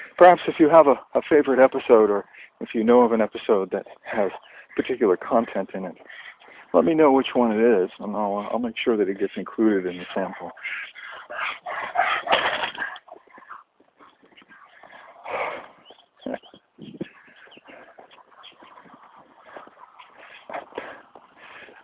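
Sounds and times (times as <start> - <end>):
speech: 0.2 - 12.0
dog panting: 3.8 - 6.8, 10.0 - 21.8
woman's running footsteps: 10.9 - 21.8.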